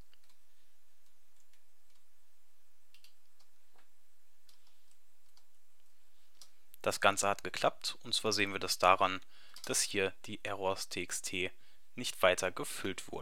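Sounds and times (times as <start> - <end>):
steady hiss: 0.0 - 13.2
typing on a computer keyboard: 0.1 - 0.4, 2.9 - 6.6
speech: 6.8 - 13.2.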